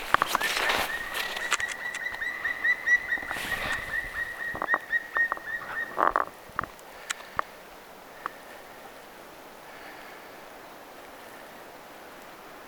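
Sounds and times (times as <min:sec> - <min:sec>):
black woodpecker courtship call while taking flight: 0:00.0 - 0:06.3.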